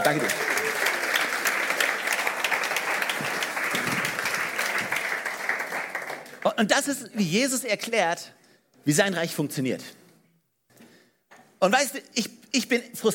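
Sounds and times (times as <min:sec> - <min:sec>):
audience applause: 0:00.0 - 0:06.5
speech: 0:00.1 - 0:00.5, 0:06.6 - 0:10.0, 0:11.6 - 0:13.1.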